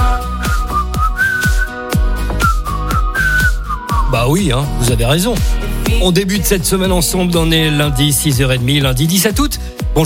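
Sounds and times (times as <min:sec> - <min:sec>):
bright whistled melody: 0:00.0 - 0:04.9
steady punchy beat with deep bass: 0:00.0 - 0:10.0
speech: 0:04.3 - 0:10.0.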